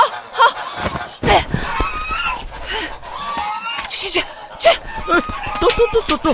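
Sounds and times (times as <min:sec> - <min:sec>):
large goose honking: 0:00.0 - 0:06.3
outdoor noise: 0:00.0 - 0:06.3
overlapping commotion: 0:00.6 - 0:06.3
speech: 0:06.1 - 0:06.3.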